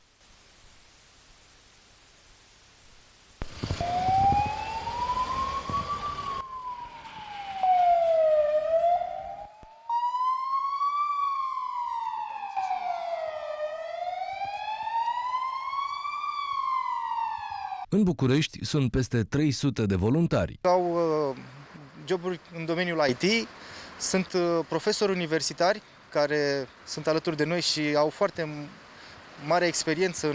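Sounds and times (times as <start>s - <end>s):
ambulance siren as the crew leaves for a call: 3.6s - 17.9s
speech: 18.0s - 21.0s, 22.1s - 28.8s, 29.4s - 30.3s.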